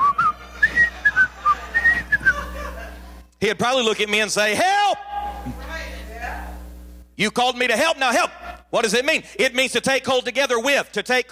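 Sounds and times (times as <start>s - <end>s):
person whistling a bouncy cheerful TV theme tune: 0.0s - 2.4s
laughter: 0.0s - 3.4s
speech: 3.4s - 5.0s, 7.2s - 11.3s.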